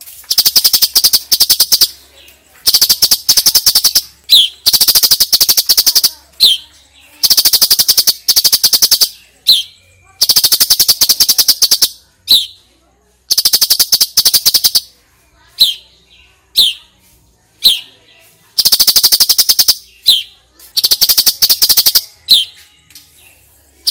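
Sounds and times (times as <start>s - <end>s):
female sooty-headed bulbul giving rapid evenly pulsed chattering notes: 0.0s - 12.6s, 13.2s - 16.9s, 17.6s - 22.6s, 23.8s - 23.9s
female sooty-headed bulbul sharp downslurred chips: 0.0s - 12.6s, 13.3s - 15.0s, 18.5s - 23.2s.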